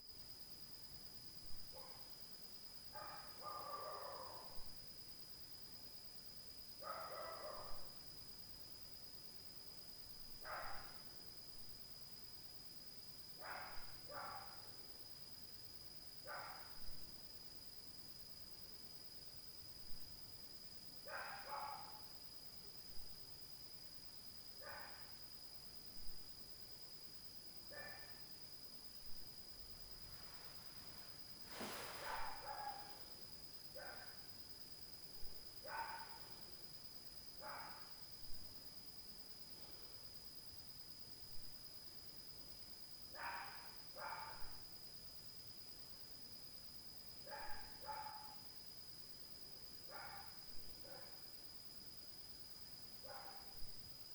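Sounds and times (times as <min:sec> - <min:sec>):
dog at night: 0:01.7 - 0:02.1, 0:03.0 - 0:04.6, 0:06.8 - 0:08.0, 0:10.4 - 0:11.0, 0:13.4 - 0:14.7, 0:16.3 - 0:16.8, 0:21.1 - 0:22.1, 0:24.6 - 0:25.1, 0:27.7 - 0:28.2, 0:30.8 - 0:33.0, 0:33.8 - 0:34.2, 0:35.6 - 0:36.3, 0:37.4 - 0:38.0, 0:43.2 - 0:44.6, 0:47.2 - 0:48.4, 0:49.9 - 0:51.2, 0:53.0 - 0:53.6
night noise: 0:27.7 - 0:38.2.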